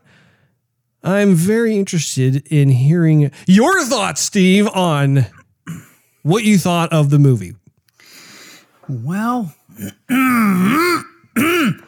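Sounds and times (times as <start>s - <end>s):
speech: 1.0s - 5.4s, 6.2s - 7.6s, 8.9s - 11.8s
man clearing his throat: 5.6s - 6.0s, 9.7s - 11.8s.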